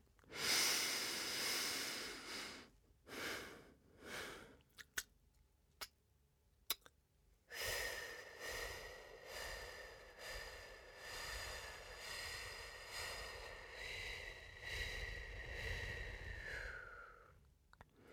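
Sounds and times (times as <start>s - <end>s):
deep breathing during a guided breathing exercise: 0.3s - 4.6s, 7.5s - 17.4s
soft clicks and mouth noises: 4.6s - 5.1s, 6.7s - 7.0s.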